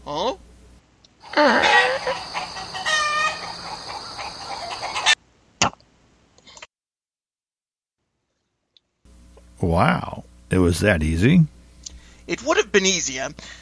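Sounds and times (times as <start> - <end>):
speech: 0.1 - 0.4, 1.4 - 2.3, 9.7 - 11.5, 12.3 - 13.6
chickens clucking and squawking: 1.2 - 5.2.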